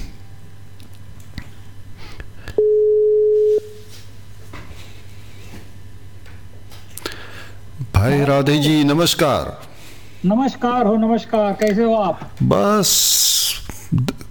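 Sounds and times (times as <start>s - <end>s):
faint hum: 0.0s - 14.2s
telephone call tone while dialing: 2.6s - 3.8s
speech: 8.0s - 14.1s.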